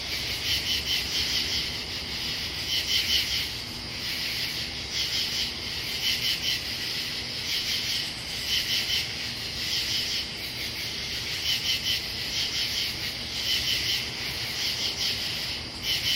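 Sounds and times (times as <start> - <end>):
constant insect hum: 0.0 - 16.1
katydid chorus of harsh scratchy pulse groups in Pennsylvania: 0.0 - 16.1.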